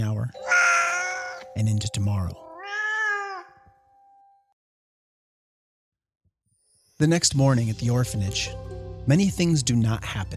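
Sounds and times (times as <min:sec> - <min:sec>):
cat crying in a long drawn-out meow: 0:00.4 - 0:01.4, 0:02.3 - 0:03.7
speech: 0:01.6 - 0:02.4, 0:07.0 - 0:10.3.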